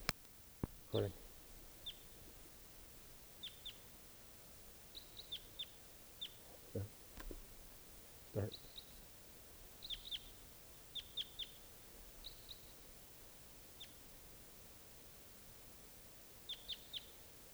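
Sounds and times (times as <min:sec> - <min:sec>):
faint steady hiss: 0:00.0 - 0:17.5
wild bird calling in sharp high chirps: 0:00.8 - 0:04.0, 0:04.6 - 0:12.9, 0:16.4 - 0:17.2
speech: 0:00.9 - 0:01.2, 0:06.8 - 0:07.0, 0:08.4 - 0:08.6.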